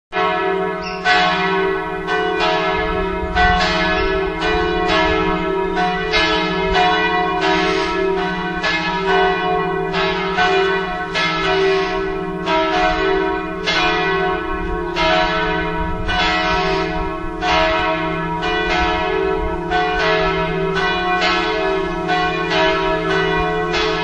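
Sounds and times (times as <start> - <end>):
bells ringing: 0.2 - 24.0.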